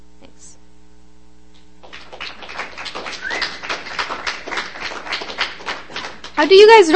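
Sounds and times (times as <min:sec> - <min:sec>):
small audience clapping: 0:01.6 - 0:06.9
speech: 0:06.4 - 0:06.9.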